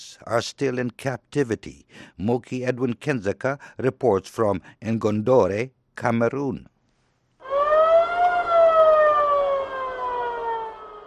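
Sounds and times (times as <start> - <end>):
speech: 0.0 - 6.7
ambulance siren wailing as the vehicle speeds past: 7.4 - 11.0.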